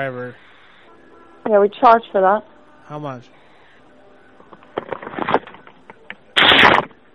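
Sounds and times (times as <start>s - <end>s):
speech: 0.0s - 0.5s, 1.5s - 3.4s
woman farting over a phone call: 6.4s - 7.0s.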